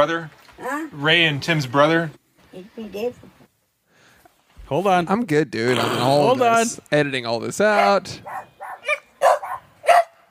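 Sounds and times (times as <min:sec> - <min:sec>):
speech: 0:00.0 - 0:03.4, 0:04.7 - 0:08.5
dogs barking: 0:07.7 - 0:10.2.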